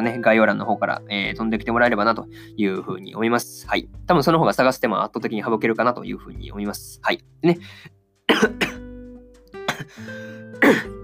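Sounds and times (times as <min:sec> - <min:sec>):
speech: 0:00.0 - 0:08.7, 0:09.9 - 0:11.0
person with a sore throat coughing: 0:08.3 - 0:08.9, 0:09.6 - 0:11.0.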